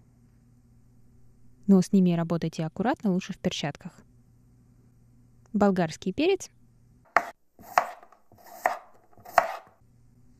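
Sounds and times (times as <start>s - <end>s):
speech: 1.7s - 4.1s, 5.5s - 6.6s
knife chopping seeded dried chili peppers on a cutting board: 7.1s - 9.8s.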